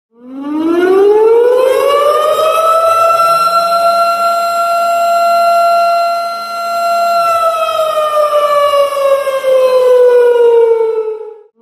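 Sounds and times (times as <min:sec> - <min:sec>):
tornado siren: 0:00.1 - 0:11.6.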